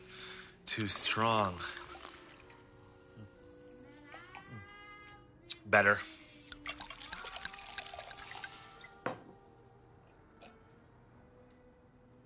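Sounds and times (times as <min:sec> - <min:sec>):
speech: 0:00.7 - 0:01.8, 0:05.7 - 0:06.2
water pouring into a glass to water down a drink: 0:00.7 - 0:03.0, 0:06.5 - 0:09.2.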